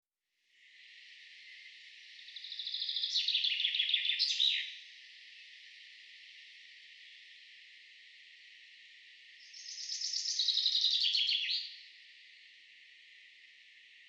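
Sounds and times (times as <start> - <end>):
Fringilla coelebs common chaffinch song: 1.4 - 4.9, 9.4 - 11.9.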